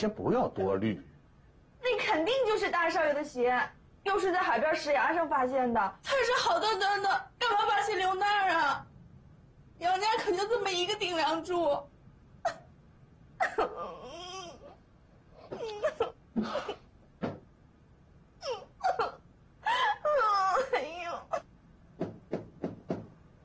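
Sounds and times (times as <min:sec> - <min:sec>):
speech: 0:00.0 - 0:01.1, 0:02.1 - 0:08.9, 0:09.8 - 0:12.6, 0:13.4 - 0:14.4, 0:15.5 - 0:16.8
woman sobbing: 0:13.4 - 0:14.8, 0:15.5 - 0:16.8, 0:18.4 - 0:21.5.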